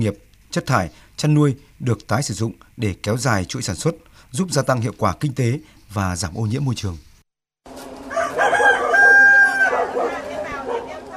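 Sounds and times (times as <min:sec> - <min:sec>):
speech: 0:00.0 - 0:07.1
farmyard murmur: 0:07.7 - 0:11.1
rooster crowing: 0:08.0 - 0:11.1.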